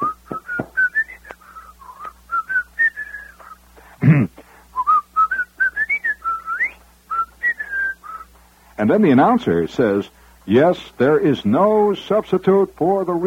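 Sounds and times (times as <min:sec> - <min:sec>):
person whistling a bouncy tune in a radio commercial for butter: 0:00.0 - 0:03.6, 0:04.8 - 0:08.3
speech: 0:08.8 - 0:13.2.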